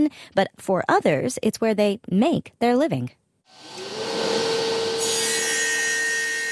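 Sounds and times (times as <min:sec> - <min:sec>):
speech: 0:00.0 - 0:03.9
wood being sawed in a workshop: 0:03.6 - 0:06.4.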